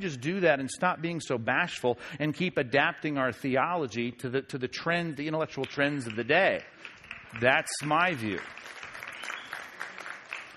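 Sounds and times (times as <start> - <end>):
speech: 0.0 - 8.8
light applause from an audience: 5.7 - 10.5.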